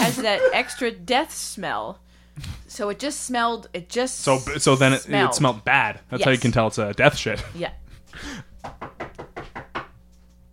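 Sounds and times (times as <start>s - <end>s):
speech: 0.1s - 8.8s
rapid knocking: 8.6s - 9.9s.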